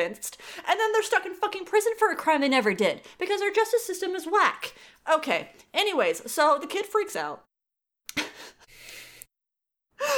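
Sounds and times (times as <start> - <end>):
speech: 0.0 - 7.5
person taking a deep breath: 8.4 - 9.3.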